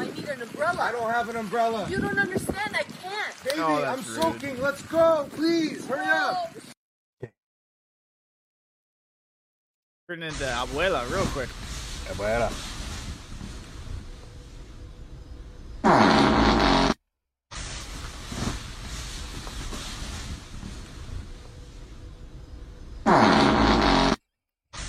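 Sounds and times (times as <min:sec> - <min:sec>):
steady windy rumbling background: 0:00.0 - 0:03.4, 0:10.4 - 0:15.8, 0:17.7 - 0:23.1
speech: 0:00.3 - 0:07.3, 0:10.1 - 0:12.7
loud sputtering fart sound effect: 0:15.8 - 0:18.6, 0:23.0 - 0:24.2.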